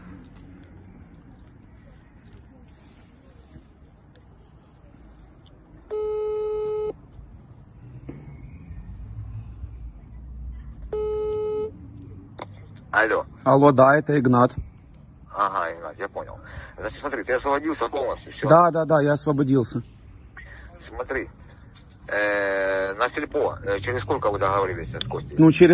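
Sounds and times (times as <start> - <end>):
steady outdoor noise: 0.0 - 25.7
ringback tone of a phone call placed from another phone: 5.9 - 7.0, 10.9 - 11.8
speech: 13.0 - 14.7, 16.8 - 19.9, 21.1 - 21.4, 22.1 - 25.7.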